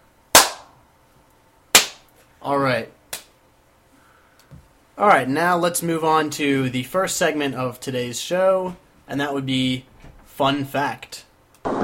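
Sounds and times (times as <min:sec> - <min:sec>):
high five hand slaps: 0:00.4 - 0:00.7, 0:01.8 - 0:02.0, 0:03.1 - 0:03.3
speech: 0:02.4 - 0:03.0, 0:05.0 - 0:11.2.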